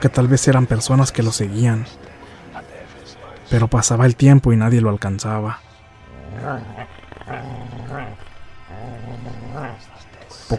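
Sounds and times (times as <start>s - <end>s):
speech: 0.0s - 2.2s, 3.5s - 5.7s, 6.3s - 8.2s
dog growling and barking aggressively: 6.1s - 10.0s.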